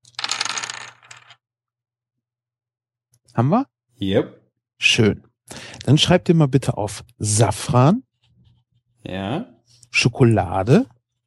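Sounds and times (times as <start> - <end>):
dice rattling and clattering across a hard surface: 0.0 - 1.4
speech: 3.4 - 8.1, 9.0 - 11.0.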